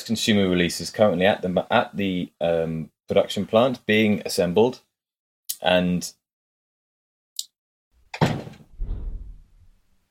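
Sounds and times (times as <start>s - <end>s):
speech: 0.0s - 4.9s, 5.6s - 6.2s
door closing thud: 8.1s - 9.8s
low rumble: 8.7s - 9.9s.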